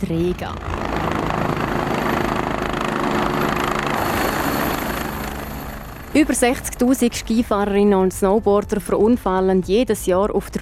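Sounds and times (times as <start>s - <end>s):
speech: 0.0s - 0.8s, 6.2s - 10.6s
rescue helicopter rotor and engine droning overhead: 0.0s - 10.6s.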